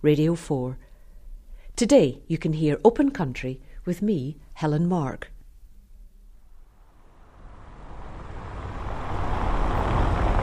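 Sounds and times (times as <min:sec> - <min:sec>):
speech: 0:00.0 - 0:00.8, 0:01.8 - 0:05.3
road traffic of cars and heavier vehicles passing around a town market square: 0:06.6 - 0:10.4.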